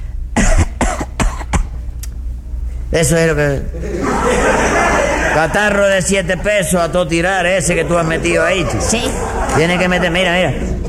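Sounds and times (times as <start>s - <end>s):
person coughing hard to sound like bronchitis: 0.4s - 1.8s
speech: 2.9s - 4.6s, 5.4s - 10.8s
laughter: 3.5s - 10.8s.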